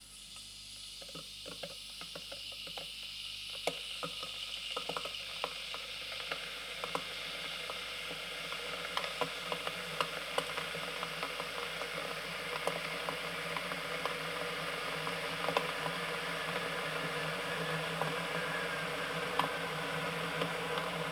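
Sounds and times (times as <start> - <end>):
kettle boiling: 1.0 - 21.1.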